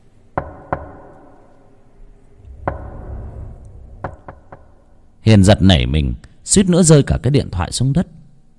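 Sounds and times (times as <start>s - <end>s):
sharp knocks on a door: 0.4s - 1.1s, 4.0s - 4.8s
speech: 5.3s - 8.2s.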